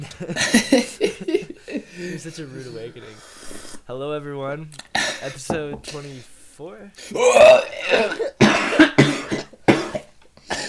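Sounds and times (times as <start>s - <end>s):
speech: 0.0s - 0.9s, 2.2s - 8.3s
loud harsh breathy cough straight into a microphone: 7.3s - 10.6s.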